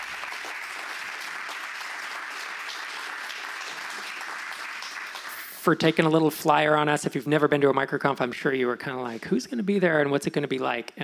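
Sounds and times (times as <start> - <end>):
conference audience applause: 0.0 - 5.6
speech: 5.6 - 11.0.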